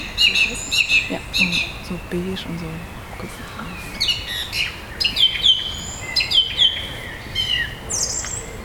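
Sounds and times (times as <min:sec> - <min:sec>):
thrush singing fluting song with trills: 0:00.0 - 0:05.6
faint hiss: 0:00.0 - 0:08.6
speech: 0:01.1 - 0:03.9.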